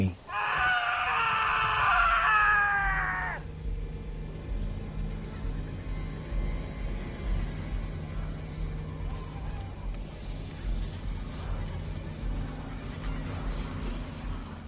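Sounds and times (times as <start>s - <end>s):
loud piercing scream: 0.2s - 3.5s
low steady rumble: 1.7s - 14.6s.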